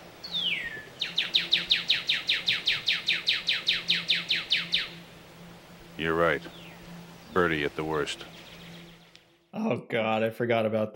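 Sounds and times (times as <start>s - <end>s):
faint hum: 0.0s - 10.9s
bird calling in a rapid agitated burst: 0.2s - 5.2s, 5.8s - 9.5s
speech: 6.0s - 6.6s, 7.4s - 8.4s, 9.5s - 10.9s.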